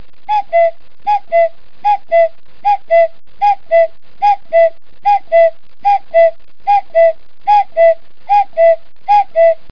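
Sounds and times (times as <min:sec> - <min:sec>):
cuckoo calling a two-note descending call: 0:00.3 - 0:09.7.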